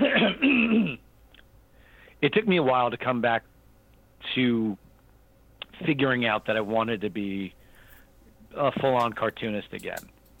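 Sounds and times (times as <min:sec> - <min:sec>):
person clearing throat with a rough cough-like rasp: 0:00.0 - 0:01.0
speech: 0:02.2 - 0:03.5, 0:04.2 - 0:04.8, 0:05.8 - 0:07.6, 0:08.5 - 0:10.1.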